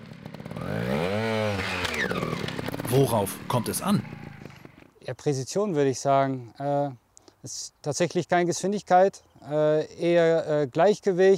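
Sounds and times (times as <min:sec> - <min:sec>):
small trial motorcycle engine revving: 0:00.0 - 0:04.9
speech: 0:02.9 - 0:04.2, 0:05.1 - 0:11.3.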